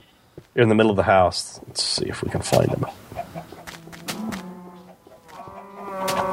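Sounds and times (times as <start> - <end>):
speech: 0.6 - 3.1
chickens clucking on a farm: 1.8 - 6.3
pigs on a farm: 2.3 - 6.3
cows lowing on a farm: 2.7 - 6.3.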